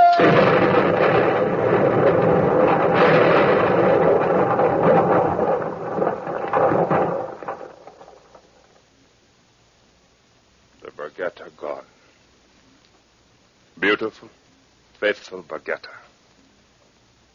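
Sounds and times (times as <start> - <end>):
torpedo explosion striking a ship: 0.0 - 8.7
speech: 14.0 - 14.4, 15.0 - 16.0.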